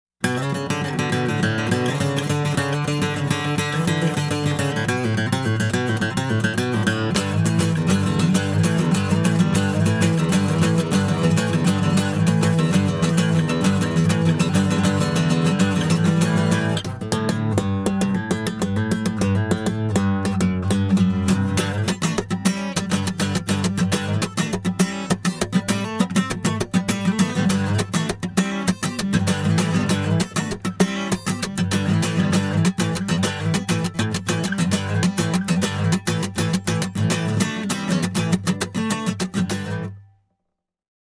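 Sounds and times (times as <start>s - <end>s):
guitar jam in F: 0.2s - 40.1s.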